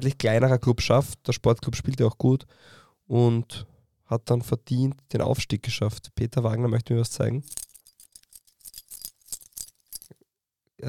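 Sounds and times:
speech: 0:00.0 - 0:07.6
bunch of keys jingling: 0:07.4 - 0:10.2.

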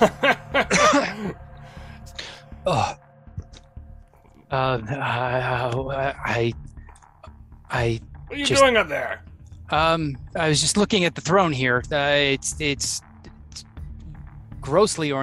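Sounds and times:
speech: 0:00.0 - 0:00.2, 0:02.6 - 0:03.0, 0:04.5 - 0:06.7, 0:07.8 - 0:13.7, 0:14.6 - 0:15.2
laughter: 0:00.0 - 0:01.4
voice imitating choking and wet coughing on blood: 0:00.6 - 0:01.4.

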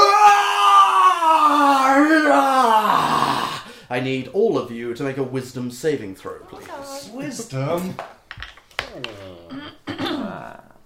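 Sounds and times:
man imitating a raging king's scream in a hall: 0:00.0 - 0:03.7
speech: 0:04.0 - 0:08.2, 0:08.9 - 0:09.6.

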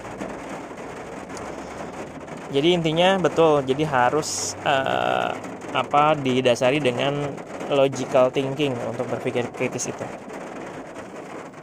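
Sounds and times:
steady rain pattering on a surface: 0:00.0 - 0:11.6
speech: 0:02.5 - 0:10.3.

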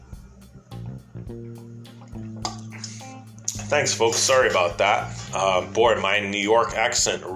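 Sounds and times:
speech: 0:01.3 - 0:01.7, 0:03.7 - 0:07.3
person sipping water: 0:02.1 - 0:03.6.

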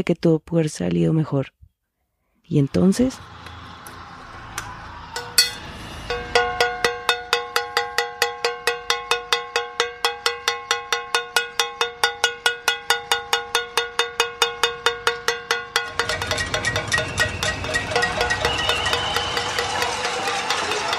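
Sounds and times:
speech: 0:00.0 - 0:01.6, 0:02.5 - 0:03.5
metal pots being banged in protest in Bogota: 0:05.2 - 0:20.9.

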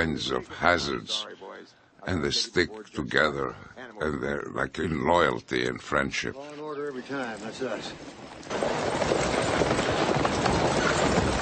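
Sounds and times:
speech: 0:00.0 - 0:01.4, 0:02.0 - 0:09.1
horse hooves clip-clopping as a horse-drawn stagecoach arrives: 0:07.4 - 0:11.4.

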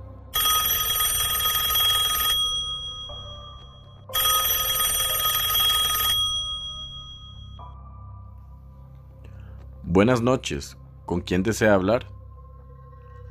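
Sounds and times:
telephone ringing at night: 0:00.3 - 0:07.6
speech: 0:10.0 - 0:12.2.

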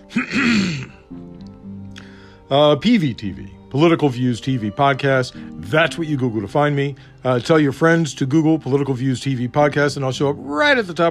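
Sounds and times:
person clearing throat: 0:00.1 - 0:01.0
speech: 0:02.5 - 0:11.0.

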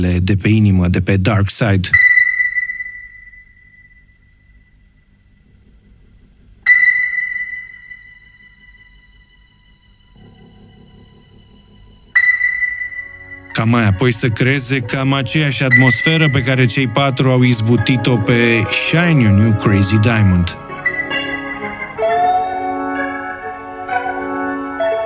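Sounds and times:
speech: 0:00.0 - 0:02.0, 0:13.6 - 0:20.6
soft low drone of instruments: 0:01.9 - 0:25.0
bright sonar-like ping opening a song: 0:02.0 - 0:05.9, 0:06.6 - 0:16.6, 0:20.8 - 0:22.8.

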